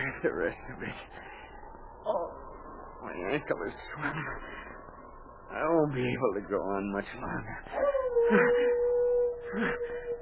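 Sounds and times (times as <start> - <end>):
speech: 0.2 - 1.4, 2.0 - 2.4, 3.0 - 4.7, 5.5 - 8.8, 9.5 - 10.0
wolves howling: 7.7 - 10.1.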